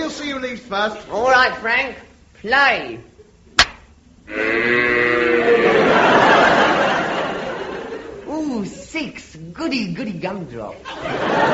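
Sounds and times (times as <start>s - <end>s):
speech: 0.3s - 3.1s, 4.3s - 5.1s, 8.6s - 11.5s
sharp click: 3.6s - 3.9s
cow mooing: 4.3s - 5.8s
laughter: 5.4s - 8.8s, 10.7s - 11.5s.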